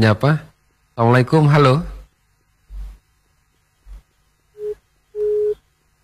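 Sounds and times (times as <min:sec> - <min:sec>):
speech: 0:00.0 - 0:01.9
telephone busy tone after a phone call is cut off: 0:04.6 - 0:05.6.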